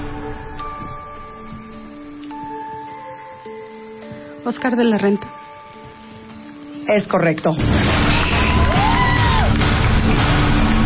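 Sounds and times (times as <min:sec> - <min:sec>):
speech: 0:04.4 - 0:05.4, 0:06.9 - 0:08.3
room full of people shouting and cheering: 0:07.8 - 0:10.8.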